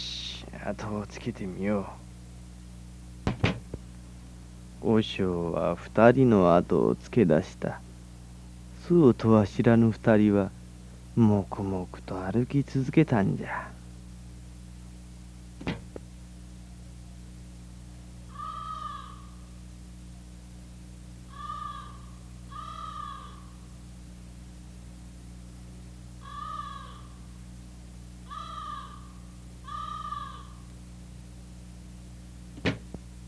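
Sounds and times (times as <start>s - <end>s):
low hum: 0.0s - 33.2s
speech: 0.7s - 2.0s, 4.8s - 7.9s, 8.9s - 10.6s, 11.2s - 13.8s
sharp knock: 3.2s - 3.7s, 15.6s - 16.0s, 32.6s - 33.0s
crow cawing: 18.3s - 19.5s, 21.3s - 23.7s, 26.2s - 27.3s, 28.2s - 30.7s.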